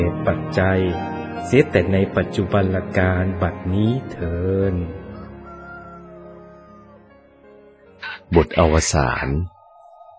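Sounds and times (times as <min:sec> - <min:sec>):
speech: 0:00.0 - 0:05.0, 0:08.3 - 0:09.5
junglefowl crowing: 0:04.8 - 0:07.3.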